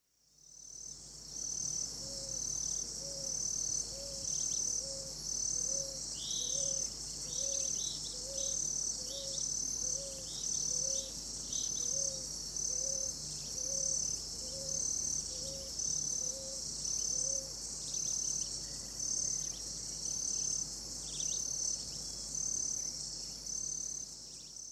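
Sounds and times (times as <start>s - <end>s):
cicadas: 0.0s - 24.7s.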